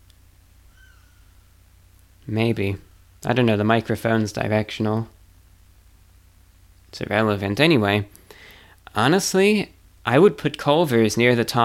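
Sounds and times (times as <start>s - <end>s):
steady low hum: 0.0s - 11.6s
bird call outside: 0.6s - 3.2s
speech: 2.3s - 5.2s, 6.9s - 8.2s, 8.9s - 11.6s.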